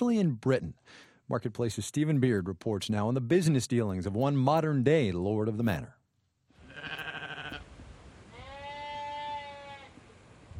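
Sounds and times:
speech: 0.0 - 6.0
soft outdoor hiss: 0.0 - 10.5
sheep bleating on a hillside at Alstonfield, Britain: 6.6 - 7.6, 8.3 - 10.0.

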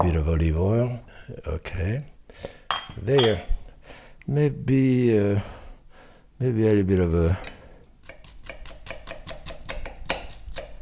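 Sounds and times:
speech: 0.0 - 3.6, 4.2 - 5.6, 6.4 - 7.6
dull kitchen knife chopping red onion on a board: 8.0 - 10.8.

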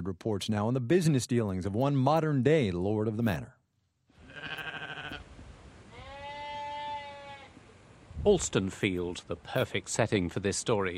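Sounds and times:
speech: 0.0 - 3.6, 8.2 - 10.9
sheep grazing on a hillside bleating: 4.2 - 5.2, 5.9 - 7.6.

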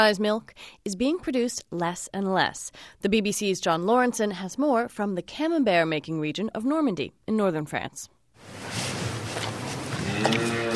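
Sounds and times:
speech: 0.0 - 8.9, 10.2 - 10.7
cow low tonal grunt: 9.9 - 10.7.

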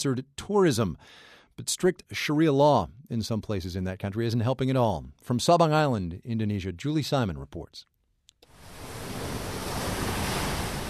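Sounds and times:
speech: 0.0 - 7.9
ocean waves breaking on a white-sand beach on Sabang Island Indonesia: 8.5 - 10.8.

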